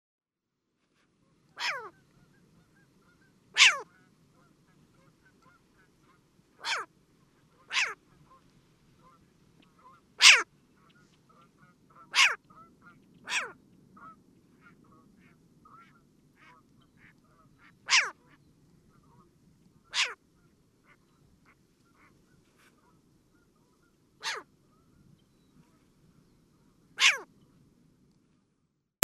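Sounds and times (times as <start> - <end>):
Short-eared owl screeching: 1.6 - 1.9, 3.6 - 3.8, 6.6 - 6.9, 7.7 - 8.0, 10.2 - 10.4, 12.1 - 12.4, 13.3 - 13.5, 17.9 - 18.1, 19.9 - 20.2, 24.2 - 24.4, 27.0 - 27.2.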